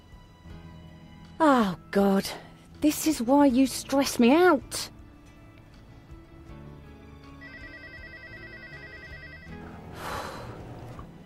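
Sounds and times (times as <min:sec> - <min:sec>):
speech: 0:01.4 - 0:04.9
telephone ringing with a warbling electronic trill: 0:07.3 - 0:09.9.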